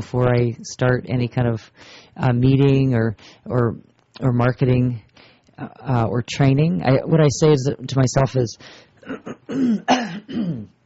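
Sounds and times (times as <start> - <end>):
speech: 0.0 - 10.8
throat clearing: 9.0 - 10.8.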